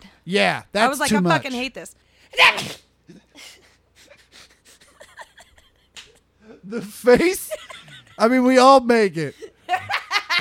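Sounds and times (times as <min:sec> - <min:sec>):
speech: 0:00.2 - 0:03.6, 0:06.7 - 0:09.5
person sneezing: 0:02.3 - 0:03.6.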